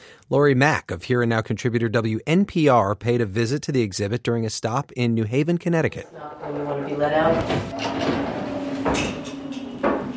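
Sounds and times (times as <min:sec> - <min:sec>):
speech: 0:00.3 - 0:09.1
heavy metal prison cell door sliding closed: 0:06.4 - 0:10.1.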